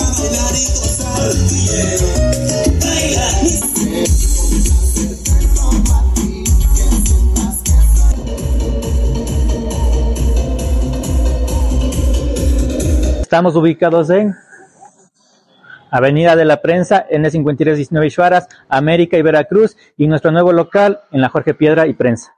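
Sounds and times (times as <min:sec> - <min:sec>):
loud bass-heavy music from a custom car audio speaker box: 0:00.0 - 0:13.3
speech: 0:13.3 - 0:14.5, 0:15.9 - 0:22.3.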